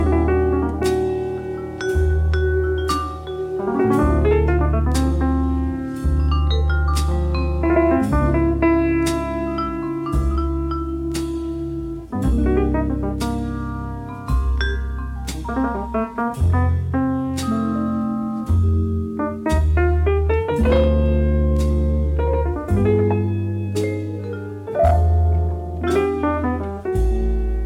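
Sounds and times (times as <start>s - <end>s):
night jazz on vibraphone: 0.0s - 27.6s.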